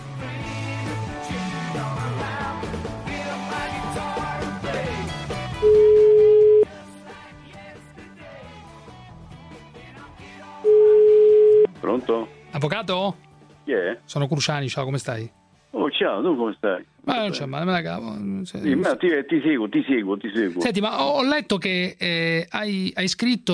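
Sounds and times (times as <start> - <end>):
music: 0.0 - 23.5
ringing tone of an outgoing telephone call: 5.6 - 6.7, 10.7 - 11.7
speech: 12.6 - 23.5.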